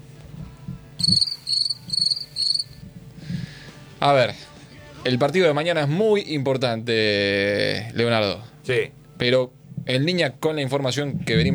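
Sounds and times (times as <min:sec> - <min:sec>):
crickets chirping: 0:00.0 - 0:03.8
speech: 0:01.0 - 0:02.2, 0:04.0 - 0:11.5.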